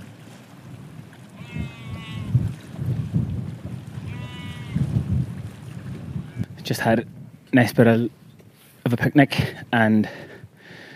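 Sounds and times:
low rumble of wind in open country: 0:00.0 - 0:10.9
sheep bleating in a mountain valley by a glacial lake: 0:01.4 - 0:02.4, 0:04.0 - 0:04.8
speech: 0:06.7 - 0:08.2, 0:08.9 - 0:10.3.

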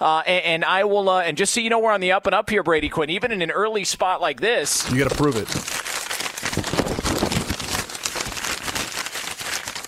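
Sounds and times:
speech: 0:00.0 - 0:06.0
paper envelope being ripped open and handled in a studio: 0:04.8 - 0:09.8.

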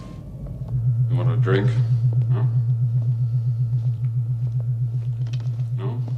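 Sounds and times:
deep steady low-frequency electrical hum in an apartment: 0:00.0 - 0:06.1
speech: 0:01.4 - 0:02.7.

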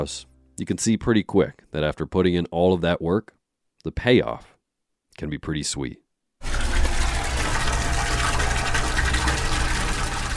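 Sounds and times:
speech: 0:00.0 - 0:04.5, 0:05.2 - 0:06.0
maple sap gushing from tubing into a plastic-lined cement box: 0:06.4 - 0:10.3.

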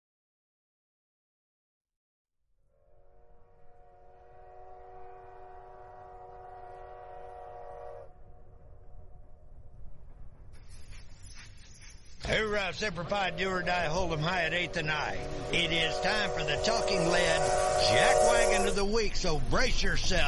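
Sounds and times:
train whistle blast: 0:02.8 - 0:08.2, 0:13.2 - 0:19.2
heavy rumble of rolling train wheels: 0:03.8 - 0:20.2
speech: 0:12.3 - 0:20.2.

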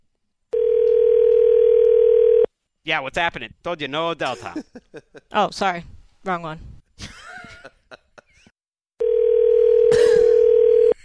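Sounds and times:
telephone dial tone: 0:00.6 - 0:02.5, 0:09.0 - 0:11.0
speech: 0:02.8 - 0:06.7.

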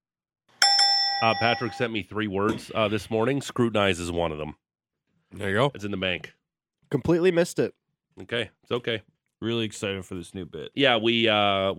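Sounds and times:
bright metallic bell ding: 0:00.6 - 0:02.0
speech: 0:01.2 - 0:04.6, 0:05.3 - 0:11.7.

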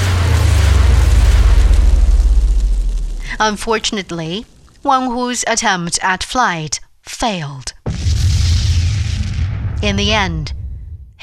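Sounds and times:
gunpowder rockets strapped to a chair backrest igniting in a loud roar: 0:00.0 - 0:05.2, 0:07.9 - 0:11.2
speech: 0:03.4 - 0:07.8, 0:09.8 - 0:10.6.

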